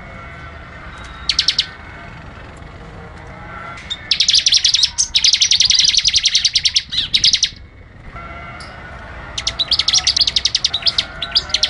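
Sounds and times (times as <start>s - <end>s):
bird song of rapid high-pitched chirping notes: 1.2s - 1.8s, 3.8s - 7.7s, 9.4s - 11.6s.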